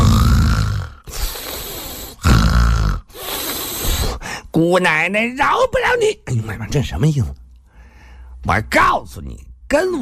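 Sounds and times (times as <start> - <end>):
voice imitating the loud snoring of a sleeping woman: 0.0 - 4.2
speech: 4.6 - 7.4, 8.4 - 9.9.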